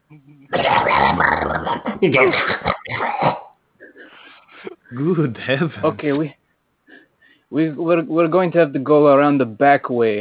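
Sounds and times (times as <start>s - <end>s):
dog growling: 0.5s - 3.0s
speech: 1.2s - 3.1s, 5.0s - 6.4s, 7.5s - 10.1s.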